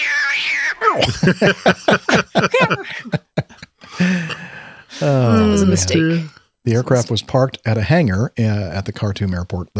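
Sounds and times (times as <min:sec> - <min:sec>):
cat meowing: 0:00.0 - 0:01.0
laughter: 0:00.9 - 0:06.2
speech: 0:01.0 - 0:03.2, 0:05.0 - 0:09.7.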